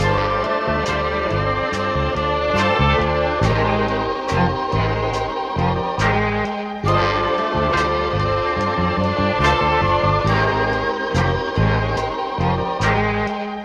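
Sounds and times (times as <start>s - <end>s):
phonk string loop: 0.0s - 13.6s.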